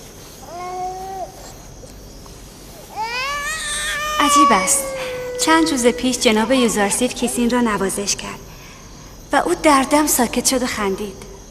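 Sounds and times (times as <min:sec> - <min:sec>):
infant crying in wavering wails: 0:00.4 - 0:01.6, 0:02.9 - 0:07.0
speech: 0:04.2 - 0:08.5, 0:09.3 - 0:11.3.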